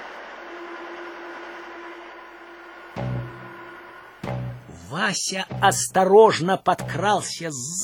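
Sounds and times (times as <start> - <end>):
train rumbling at a railway station: 0.0 - 6.0
speech: 4.9 - 7.8.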